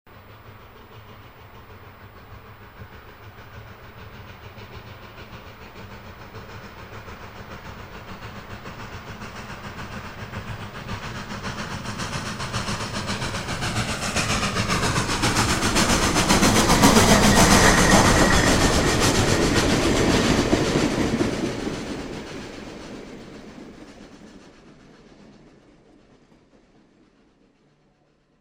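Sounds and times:
steam locomotive passing by: 0.1s - 28.4s.

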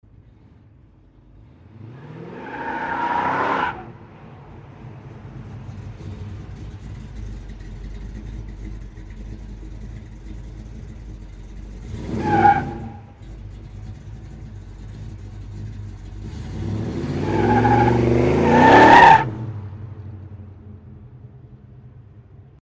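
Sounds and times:
car pulling away sharply with tyres squealing: 1.5s - 19.6s.

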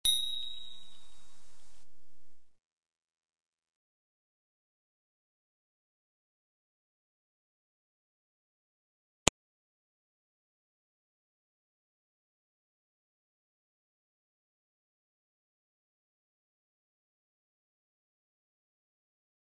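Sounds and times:
small bell ringing: 0.0s - 1.6s.

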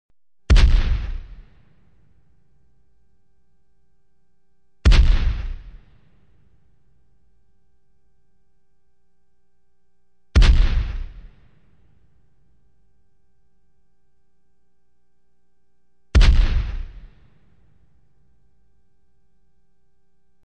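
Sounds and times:
cannon firing single shots: 0.5s - 2.0s, 4.8s - 6.3s, 10.4s - 12.0s, 16.1s - 17.7s.

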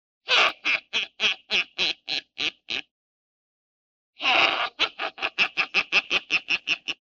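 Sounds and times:
witch laughing for Halloween: 0.3s - 2.8s, 4.2s - 7.0s.

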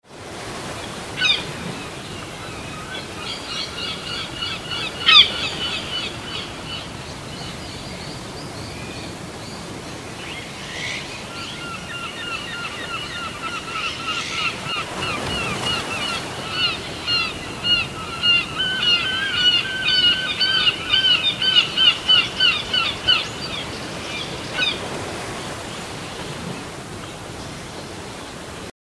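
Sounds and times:
noisy coastal waves: 0.0s - 28.7s
seagulls crying: 0.8s - 7.0s, 10.7s - 25.5s.

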